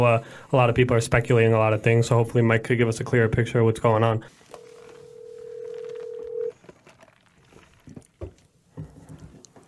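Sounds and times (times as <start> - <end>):
speech: 0.0 - 4.5
outgoing phone call ringing with a long steady electronic tone: 4.5 - 6.5.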